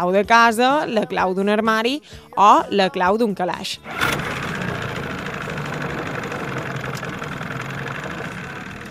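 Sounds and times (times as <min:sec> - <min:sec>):
speech: 0:00.0 - 0:04.4
car engine idling with faint rattling vibration: 0:03.8 - 0:08.8.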